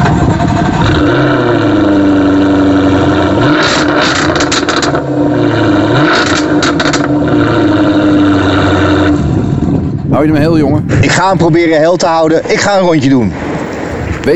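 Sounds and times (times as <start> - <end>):
5-litre V8 car engine starting and idling: 0.0 - 11.2
speech: 11.1 - 13.4.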